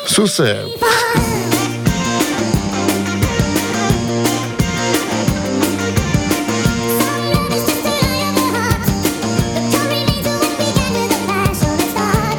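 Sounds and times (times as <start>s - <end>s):
speech: 0.1s - 1.3s
rock song played back sped up: 1.1s - 12.3s
steady rapid drum beat: 1.2s - 12.3s.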